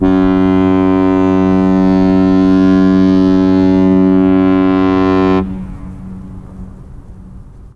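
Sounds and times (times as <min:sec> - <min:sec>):
foghorn: 0:00.0 - 0:07.2.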